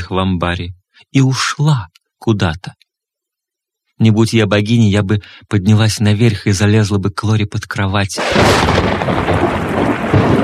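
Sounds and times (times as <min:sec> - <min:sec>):
speech: 0:00.1 - 0:02.8, 0:04.0 - 0:09.2
thunder rumbling through a storm: 0:08.2 - 0:10.4.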